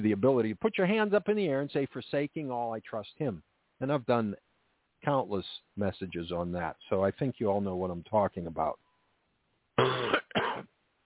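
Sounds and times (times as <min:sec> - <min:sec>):
speech: 0:00.0 - 0:08.8, 0:09.8 - 0:10.2
person coughing: 0:09.8 - 0:10.7.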